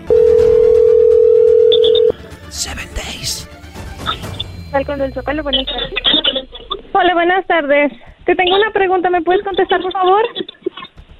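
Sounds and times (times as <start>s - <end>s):
telephone dial tone: 0.1s - 2.1s
speech: 4.7s - 6.2s, 7.0s - 10.4s.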